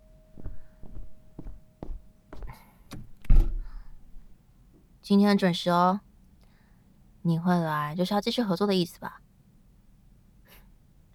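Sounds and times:
footsteps crossing the floor: 0.3s - 4.4s
heavy door thunk as a door is pulled open: 0.4s - 4.4s
door latch clicking: 2.9s - 4.3s
speech: 5.1s - 6.1s, 7.2s - 9.2s.

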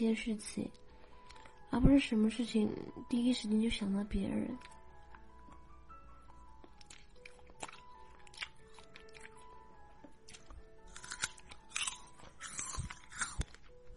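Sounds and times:
speech: 0.0s - 0.8s, 1.7s - 4.8s
crisp crunching and chewing of winter jujubes: 6.3s - 13.9s.

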